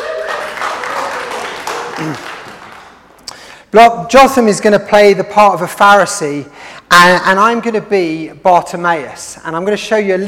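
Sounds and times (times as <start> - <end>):
crowd applauding for a volunteer: 0.0 - 3.2
speech: 2.0 - 2.4, 3.7 - 10.2.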